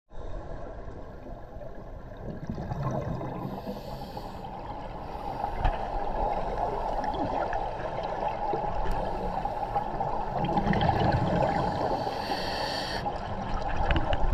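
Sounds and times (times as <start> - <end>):
scuba diving bubbles: 0.2 - 14.3
scuba diving breathing apparatus: 3.4 - 5.9, 11.7 - 13.1.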